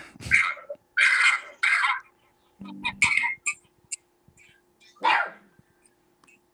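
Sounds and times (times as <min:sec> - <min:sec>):
dog barking: 0:00.3 - 0:02.1, 0:05.0 - 0:05.5.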